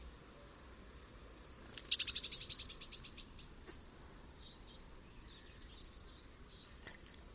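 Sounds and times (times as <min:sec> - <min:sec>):
steady hiss of background noise: 0:00.0 - 0:07.3
Eurasian blue tit churring: 0:01.5 - 0:04.9.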